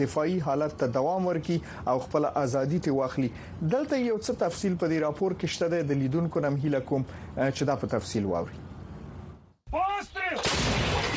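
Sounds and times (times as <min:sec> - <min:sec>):
speech: 0:00.0 - 0:08.7
artillery guns fired by Ukrainian forces: 0:10.3 - 0:11.1.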